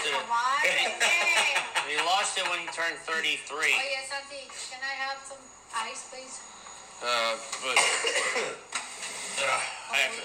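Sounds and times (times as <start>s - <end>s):
speech: 0.2s - 1.3s, 2.0s - 8.8s, 9.4s - 10.2s
laughter: 0.6s - 3.1s
person coughing harshly: 7.7s - 8.6s.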